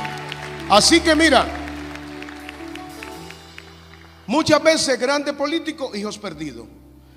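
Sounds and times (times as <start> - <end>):
scattered applause from an audience: 0.0 - 5.0
speech: 0.7 - 1.6, 4.3 - 6.8.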